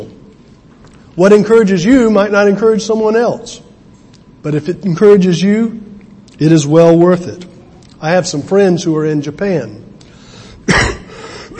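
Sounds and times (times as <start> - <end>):
speech: 1.2 - 3.6, 4.4 - 5.8, 6.4 - 9.8
person clearing throat from a tickle in the throat: 10.6 - 11.5.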